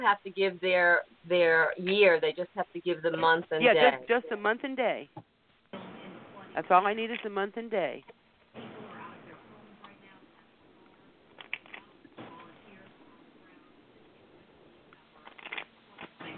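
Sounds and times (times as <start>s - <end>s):
speech: 0.0s - 5.3s, 6.6s - 8.7s
deck of angel cards shuffled by hand: 15.2s - 16.2s.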